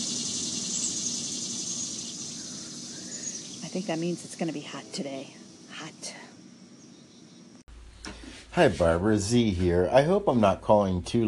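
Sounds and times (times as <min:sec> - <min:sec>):
summer cicada buzzing: 0:00.0 - 0:07.6
speech: 0:03.7 - 0:06.2, 0:08.6 - 0:11.2.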